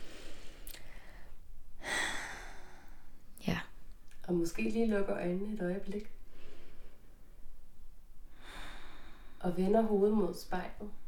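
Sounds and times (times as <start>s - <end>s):
person breathing in deeply: 0.0s - 3.2s, 8.3s - 9.4s
speech: 4.3s - 6.2s, 9.4s - 11.0s.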